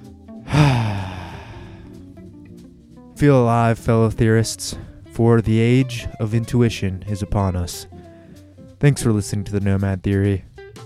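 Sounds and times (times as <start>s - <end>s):
deep breath: 0.5s - 2.1s, 8.0s - 8.6s
speech: 3.2s - 8.0s, 8.8s - 10.5s.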